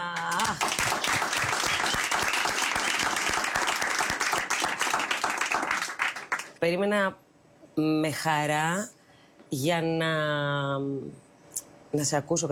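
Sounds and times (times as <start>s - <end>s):
studio audience applause: 0.0s - 6.6s
speech: 6.6s - 7.2s, 7.8s - 11.2s, 11.9s - 12.5s.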